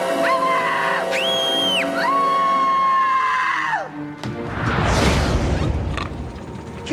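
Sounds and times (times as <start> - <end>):
two voices screaming back and forth: 0.2 - 4.0
noisy crashing rumble: 4.3 - 6.8.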